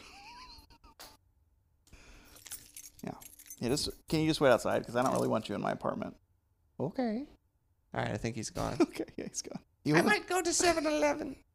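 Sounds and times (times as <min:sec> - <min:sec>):
bunch of truck keys jangling as they are handed over: 0:02.2 - 0:05.4
speech: 0:03.0 - 0:06.2, 0:06.8 - 0:11.5.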